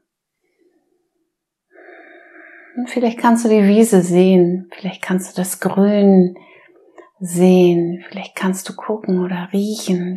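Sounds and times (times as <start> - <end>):
deep breath in and out during a guided breathing exercise: 1.7 - 2.8
speech: 2.8 - 6.6, 7.2 - 10.1.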